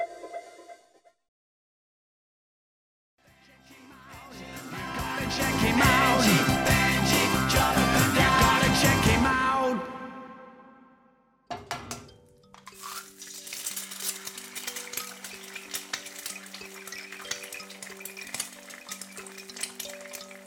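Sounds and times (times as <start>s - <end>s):
music: 3.2s - 10.6s, 11.6s - 20.4s
utensils clinking on pans: 11.7s - 20.4s
frying sizzle from cooking: 12.7s - 20.4s.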